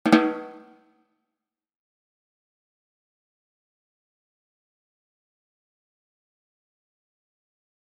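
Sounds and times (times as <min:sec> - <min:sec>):
drum rimshot: 0:00.0 - 0:00.8.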